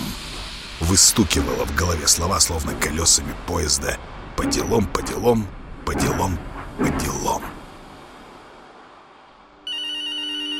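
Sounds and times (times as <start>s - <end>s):
speech: 0.8s - 7.5s
early-2000s phone ringing with a primitive electronic ringtone through a poor speaker: 9.6s - 10.5s.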